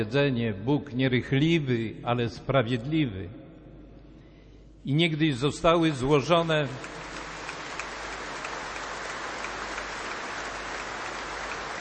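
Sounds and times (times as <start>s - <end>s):
speech: 0.0s - 3.4s, 4.8s - 7.0s
audience applauding after a speaker's remark: 6.6s - 11.7s.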